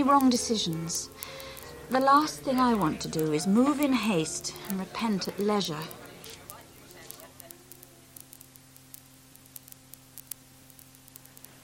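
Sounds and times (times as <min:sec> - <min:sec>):
speech: 0:00.0 - 0:06.0
faint low hum: 0:00.0 - 0:11.6
rain falling: 0:00.0 - 0:11.6.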